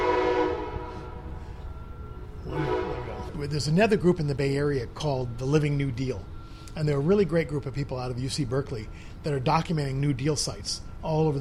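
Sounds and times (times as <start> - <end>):
train horn blast: 0.0 - 3.4
train rumbling past: 0.0 - 11.4
speech: 3.4 - 11.4.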